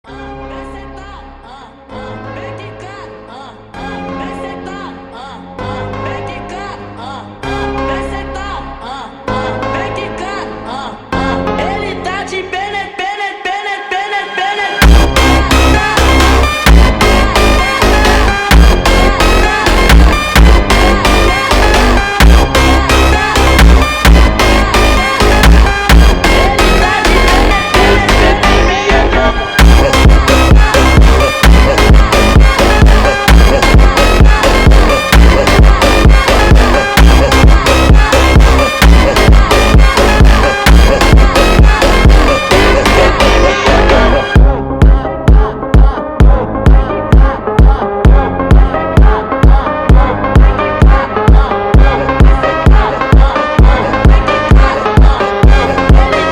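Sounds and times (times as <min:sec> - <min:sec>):
funk dance music: 0:11.6 - 0:56.3.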